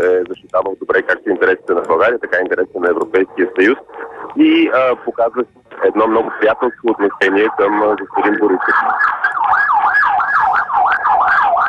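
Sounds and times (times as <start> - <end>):
emergency vehicle sirens wailing: 0.0 - 11.6
speech: 0.5 - 10.0.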